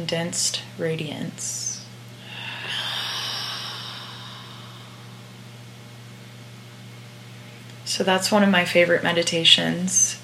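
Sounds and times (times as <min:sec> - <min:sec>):
speech: 0:00.0 - 0:01.7, 0:08.0 - 0:10.2
slow deep breath inhaled during a meditation: 0:02.2 - 0:05.5.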